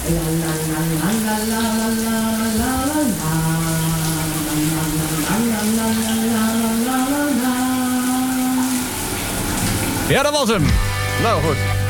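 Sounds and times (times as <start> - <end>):
person singing a wordless wavering tune: 0.0 - 9.0
shower water running: 0.0 - 11.8
speech: 0.1 - 3.4, 10.1 - 11.8.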